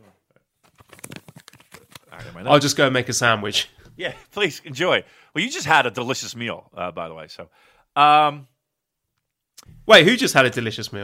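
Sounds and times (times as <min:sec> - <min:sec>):
paper rattling and crinkling: 0:00.6 - 0:02.2
speech: 0:02.2 - 0:08.5, 0:09.6 - 0:11.0.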